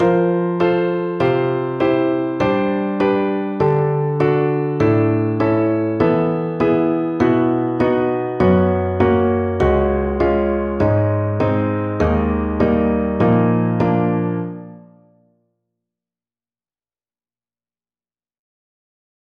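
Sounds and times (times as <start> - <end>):
rock piano: 0.0 - 15.2.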